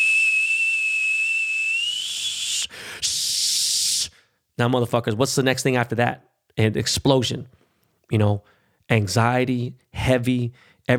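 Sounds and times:
teapot whistling with steam on the stove: 0:00.0 - 0:02.7
speech: 0:04.6 - 0:10.9.

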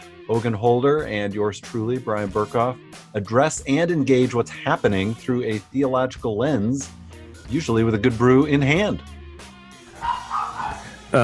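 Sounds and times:
speech: 0:00.3 - 0:09.2
dog giving sharp yappy barks: 0:09.9 - 0:11.1.

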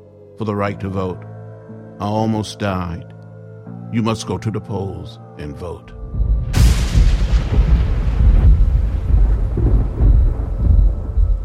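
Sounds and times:
speech: 0:00.4 - 0:01.3, 0:02.0 - 0:03.2, 0:03.9 - 0:06.3
steady stormy noise: 0:06.0 - 0:11.4
thunder cracking and rolling: 0:06.2 - 0:11.4.

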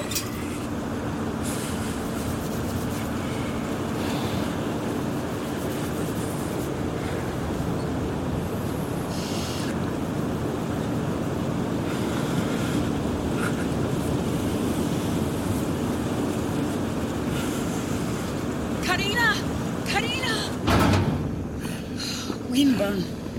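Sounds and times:
strong wind roaring outside in freezing snowy darkness: 0:00.0 - 0:22.4.

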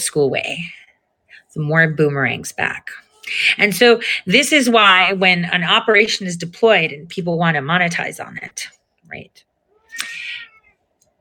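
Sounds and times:
speech: 0:00.0 - 0:00.8, 0:01.5 - 0:10.2
upset cat meowing: 0:09.7 - 0:10.9.

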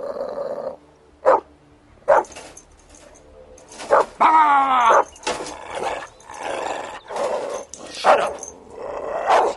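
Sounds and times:
dog snarling and growling: 0:00.0 - 0:00.8, 0:04.8 - 0:09.5
dog barking: 0:01.2 - 0:01.5, 0:02.1 - 0:02.3, 0:03.8 - 0:04.2, 0:04.9 - 0:05.1, 0:08.0 - 0:08.4, 0:09.3 - 0:09.5.

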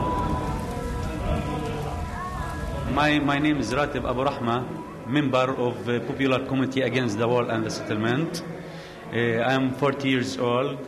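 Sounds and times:
steady hard rain mixed with hail falling: 0:00.0 - 0:05.0
speech: 0:03.0 - 0:10.8.

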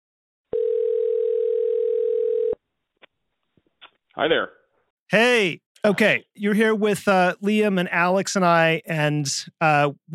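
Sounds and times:
telephone dial tone: 0:00.5 - 0:02.6
speech: 0:04.2 - 0:10.1.

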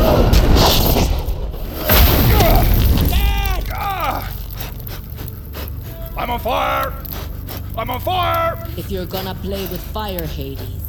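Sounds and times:
crashing bursts: 0:00.0 - 0:08.3
conjured earthquake effect rumbling roar: 0:01.9 - 0:10.8
voices crying out: 0:02.2 - 0:10.8
speech: 0:07.8 - 0:10.8.

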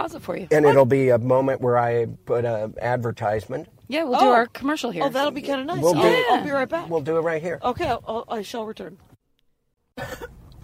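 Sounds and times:
speech: 0:00.0 - 0:09.1
person coughing: 0:10.0 - 0:10.4.

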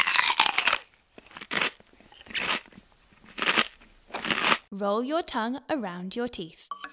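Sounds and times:
biting into a banana: 0:00.0 - 0:04.6
speech: 0:04.8 - 0:06.8.

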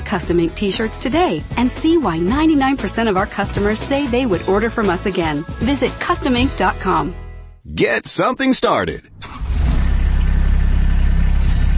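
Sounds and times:
speech: 0:00.1 - 0:09.1
Kubota RTV utility vehicle engine idling: 0:09.2 - 0:11.7.

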